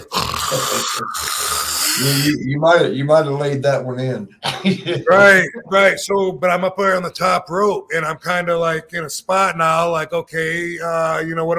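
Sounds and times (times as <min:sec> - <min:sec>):
loud snoring: 0:00.0 - 0:02.3
speech: 0:00.5 - 0:11.5
laughter: 0:04.4 - 0:05.8.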